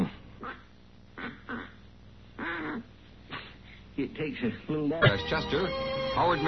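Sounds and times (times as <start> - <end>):
duck call blown in nasal quacks: 1.2 - 1.8, 2.4 - 2.8
speech: 4.0 - 6.4.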